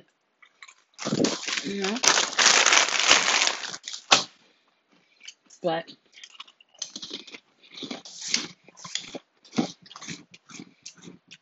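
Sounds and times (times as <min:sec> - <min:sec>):
wet crunchy chewing of burnt Fritos: 0:00.5 - 0:04.2, 0:06.1 - 0:11.4
speech: 0:01.0 - 0:02.2, 0:05.6 - 0:06.0.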